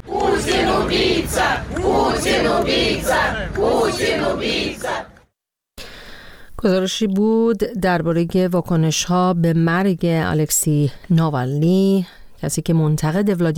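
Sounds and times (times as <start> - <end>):
large crowd of protesters chanting a slogan in unison: 0.0 - 5.3
speech: 6.6 - 13.5.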